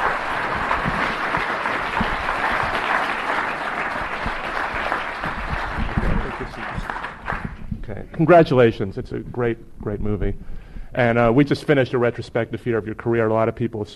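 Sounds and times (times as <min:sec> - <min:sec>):
applause from a large audience: 0:00.0 - 0:07.7
speech: 0:08.2 - 0:13.9.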